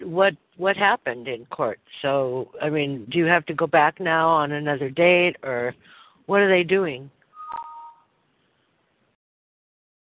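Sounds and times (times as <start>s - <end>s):
speech: 0.2s - 7.6s
short electronic phone call disconnect tone: 7.4s - 8.1s.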